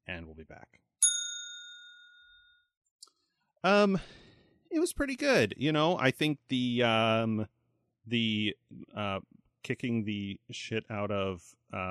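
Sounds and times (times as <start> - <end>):
speech: 0.2 - 1.0, 3.6 - 11.8
bell ding: 1.0 - 2.7.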